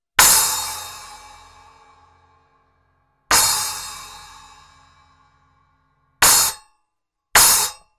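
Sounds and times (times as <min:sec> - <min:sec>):
cymbals: 0:00.2 - 0:06.5.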